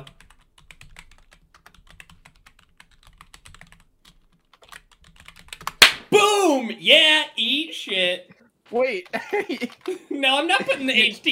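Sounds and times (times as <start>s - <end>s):
rapid typing on a computer keyboard: 0.0s - 5.8s, 9.1s - 10.0s
speech: 6.1s - 11.3s
laughter: 9.1s - 11.3s.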